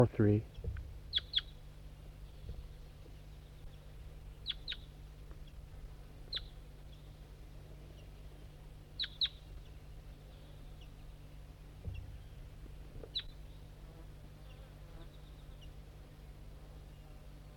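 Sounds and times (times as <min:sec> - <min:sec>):
speech: 0:00.0 - 0:00.5
low steady hum: 0:00.0 - 0:17.5
wild bird chirping on a hillside: 0:00.4 - 0:05.6, 0:06.3 - 0:07.2, 0:07.9 - 0:13.8.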